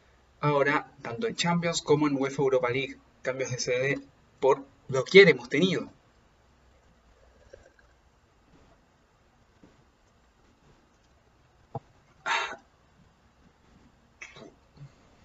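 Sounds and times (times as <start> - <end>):
speech: 0.4 - 6.0
hiccups: 12.2 - 12.7, 14.2 - 14.6.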